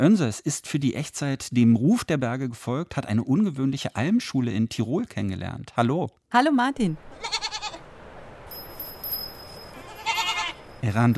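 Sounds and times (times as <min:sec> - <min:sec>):
speech: 0:00.0 - 0:07.5, 0:10.8 - 0:11.1
breezy background on an alpine pasture: 0:07.0 - 0:11.1
goats bleating outdoors on an alpine pasture in the Falsertal Tyrol: 0:07.2 - 0:07.8, 0:09.8 - 0:10.6.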